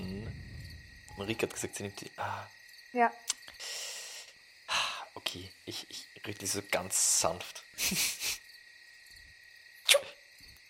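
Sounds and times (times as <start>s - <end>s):
crickets chirring: 0.0s - 10.6s
speech: 1.2s - 3.8s, 5.3s - 8.4s, 9.9s - 10.1s
person sneezing: 9.9s - 10.2s.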